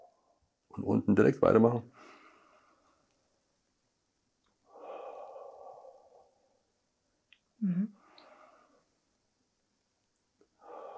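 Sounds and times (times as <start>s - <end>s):
speech: 0.7s - 2.0s
slow breathing in through nose and out through mouth during a breathing exercise: 1.9s - 3.2s, 4.6s - 6.7s, 8.0s - 9.0s, 10.4s - 10.9s.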